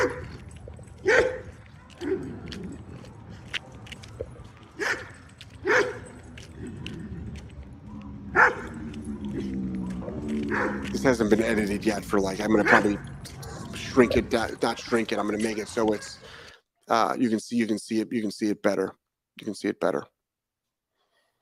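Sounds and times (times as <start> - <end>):
dogs barking: 0.0 - 3.3, 4.8 - 16.5
outdoor noise: 0.0 - 21.4
speech: 11.0 - 13.4, 14.0 - 16.2, 16.9 - 20.1.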